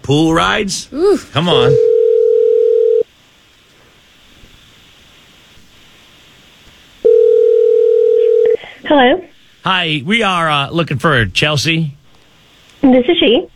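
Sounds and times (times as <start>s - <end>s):
speech: 0.1s - 1.9s, 8.9s - 12.0s, 12.8s - 13.5s
electronic telephone ring tones heard through a handset: 1.6s - 3.0s, 7.0s - 8.6s
faint telephone line hiss: 3.0s - 13.5s.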